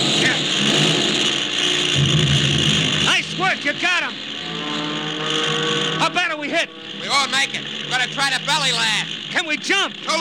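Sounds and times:
damaged airplane engine on fire roaring: 0.0s - 10.1s
speech: 3.5s - 4.3s, 5.3s - 10.1s.

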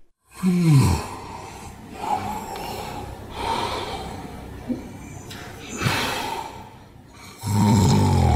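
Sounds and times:
heavy irregular snoring with sleep apnea: 0.3s - 1.3s, 7.3s - 8.3s
gasping breaths: 0.3s - 7.5s.

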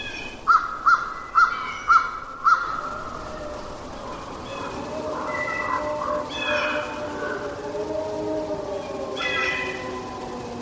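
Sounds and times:
long wavering howl-like tone: 0.0s - 10.5s
crow cawing: 0.5s - 10.2s.

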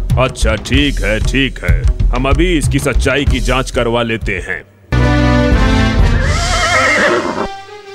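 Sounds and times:
speech: 0.2s - 4.7s
Arabian horse neighing: 6.0s - 7.6s.

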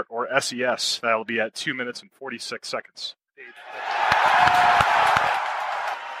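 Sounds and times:
speech: 0.2s - 5.3s
crowd shouts: 3.5s - 6.1s
large indoor crowd cheering and whooping at mission headquarters: 3.6s - 6.1s
scattered claps: 3.8s - 6.1s.

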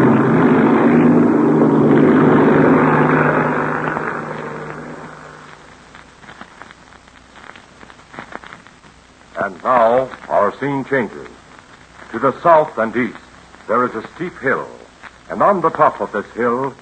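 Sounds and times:
airplane taxiing out and taking off to the north: 0.0s - 5.7s
faint scattered crackles: 0.0s - 16.8s
speech: 10.6s - 11.3s, 12.2s - 16.8s.

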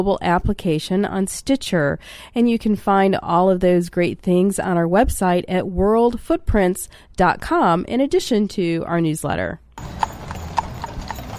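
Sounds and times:
speech: 0.0s - 10.1s
horse hooves clip-clopping through city streets of Calgary: 9.8s - 11.3s
horse-drawn chuck wagon rumble: 9.8s - 11.3s.

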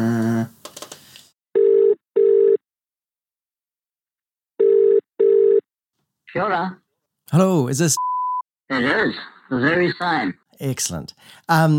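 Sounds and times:
telephone ringing on a call to a mobile number: 1.6s - 2.6s, 4.6s - 5.6s
speech: 6.3s - 8.1s, 8.7s - 11.7s.

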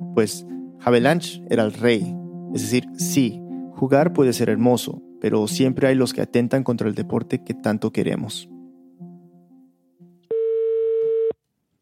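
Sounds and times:
speech: 0.2s - 8.5s
telephone ringback tone while placing a phone call: 10.3s - 11.4s.

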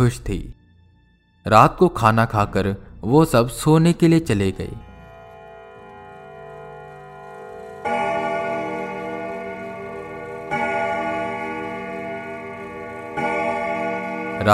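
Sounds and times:
speech: 0.0s - 0.6s, 1.4s - 4.9s
clock striking at midnight: 4.8s - 14.5s.

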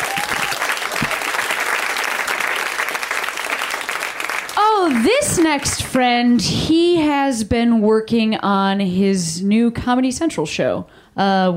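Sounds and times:
crowd applauding: 0.0s - 5.9s
speech: 5.0s - 11.5s.

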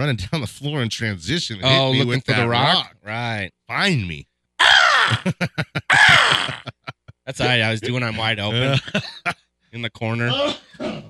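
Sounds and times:
speech: 0.0s - 4.3s, 5.1s - 6.6s, 7.3s - 11.0s
laughter: 1.3s - 3.4s, 4.9s - 9.4s
person imitating a raven's caw: 4.6s - 6.7s.

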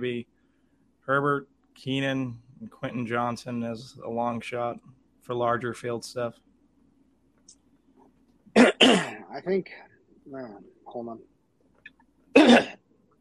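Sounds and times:
speech: 0.0s - 0.4s, 1.1s - 6.5s, 8.8s - 11.3s
faint low hum: 0.0s - 13.2s
person coughing with rough throat-clearing quality: 8.6s - 9.3s, 12.4s - 12.8s.

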